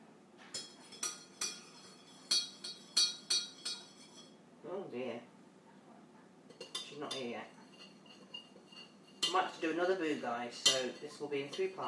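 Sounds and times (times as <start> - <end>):
spoon clinking against a cup while stirring tea: 0.6 - 4.4, 6.5 - 11.8
speech: 4.8 - 5.3, 7.0 - 7.6, 9.3 - 11.8.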